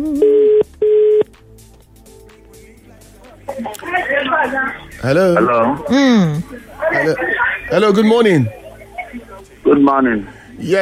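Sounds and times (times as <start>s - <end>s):
telephone ringback tone over a phone line: 0.2s - 1.2s
speech: 4.4s - 8.6s, 9.7s - 10.8s.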